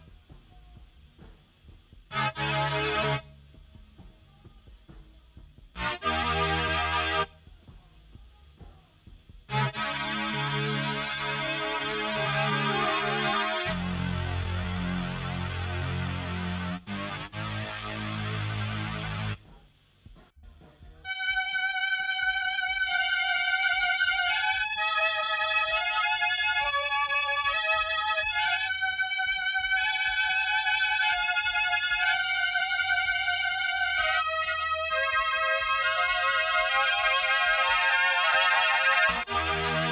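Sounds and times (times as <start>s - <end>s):
synthesizer harmony: 2.1s - 3.4s, 5.8s - 7.4s, 9.5s - 19.4s, 21.1s - 39.8s.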